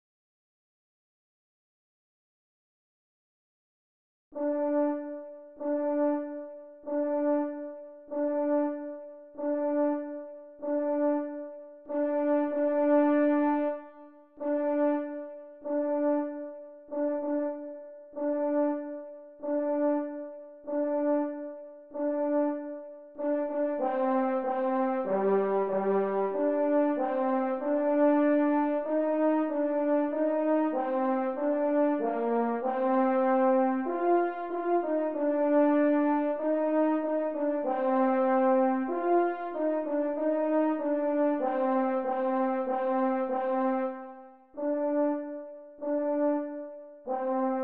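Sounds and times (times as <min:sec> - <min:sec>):
F horn: 0:04.4 - 0:47.6.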